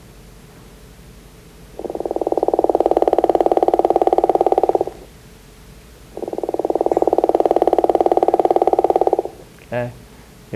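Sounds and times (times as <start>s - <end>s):
frog call, drawn-out pulsed snore: 1.8s - 5.1s, 6.1s - 9.4s.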